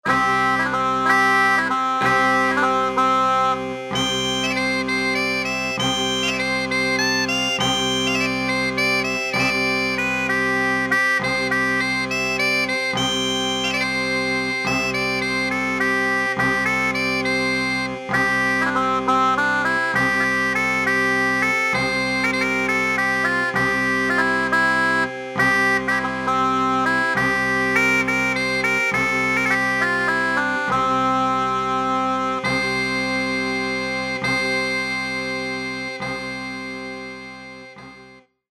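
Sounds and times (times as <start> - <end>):
bagpipe on Roland SC-50 Sound Canvas synthesizer: 0.0 - 38.5.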